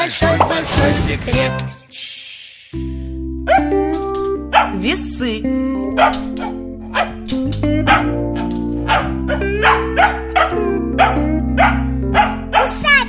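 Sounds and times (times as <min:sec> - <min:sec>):
speech: 0:00.0 - 0:02.1, 0:04.7 - 0:07.2
dog barking in sharp yaps: 0:03.5 - 0:03.7, 0:04.5 - 0:04.8, 0:06.0 - 0:07.2, 0:07.8 - 0:12.9
steady sustained musical tone: 0:04.0 - 0:12.6.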